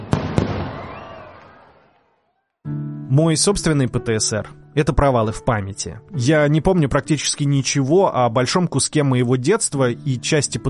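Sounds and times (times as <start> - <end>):
firecracker bangs: 0.0 - 1.6
fireworks crackling and rumbling with echo: 0.0 - 1.8
speech: 3.1 - 10.6.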